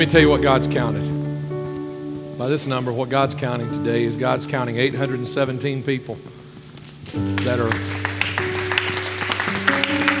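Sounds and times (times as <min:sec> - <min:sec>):
speech: 0:00.0 - 0:01.1, 0:02.4 - 0:06.4, 0:07.1 - 0:08.1
crowd clapping: 0:07.0 - 0:10.1.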